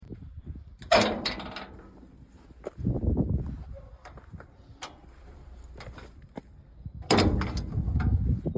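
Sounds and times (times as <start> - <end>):
gates at an entrance in Saleignes: 0.8 - 2.3, 4.0 - 6.2, 7.0 - 8.4.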